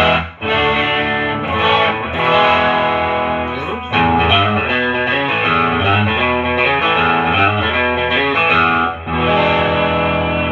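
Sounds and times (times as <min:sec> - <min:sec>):
distorted electric guitar strumming chords and riffs on middle and bridge pickups: 0:00.0 - 0:10.5.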